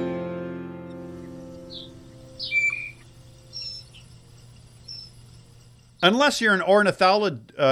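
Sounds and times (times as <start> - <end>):
sustained tone: 0.2 - 6.1
birds chirping and singing: 0.9 - 7.2
speech: 6.0 - 7.7.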